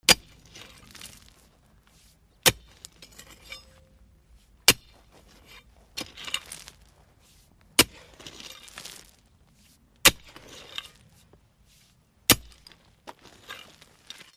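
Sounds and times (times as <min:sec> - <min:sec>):
pickaxe impacts on metal: 0:00.0 - 0:01.2, 0:02.4 - 0:04.0, 0:04.7 - 0:05.0, 0:07.8 - 0:08.9, 0:10.0 - 0:11.0, 0:12.3 - 0:14.3.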